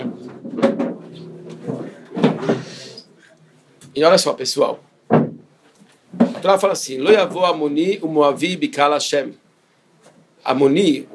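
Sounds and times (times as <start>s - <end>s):
door being shut: 0.0s - 2.7s, 5.1s - 5.5s
speech: 4.0s - 4.9s, 6.4s - 9.4s, 10.4s - 11.1s.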